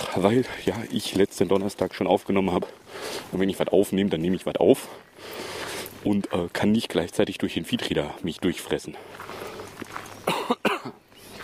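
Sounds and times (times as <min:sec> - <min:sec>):
speech: 0:00.2 - 0:09.3
person coughing harshly: 0:10.2 - 0:11.0.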